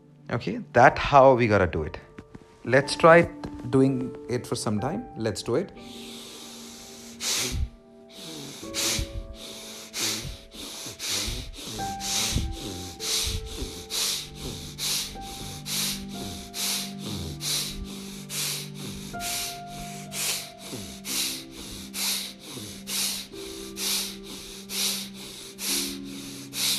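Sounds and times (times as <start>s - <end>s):
soft tonal music: 0.0s - 26.7s
speech: 0.3s - 2.0s, 2.6s - 6.1s
forceful breathing exercise with sharp inhales and strong exhales: 5.8s - 26.7s.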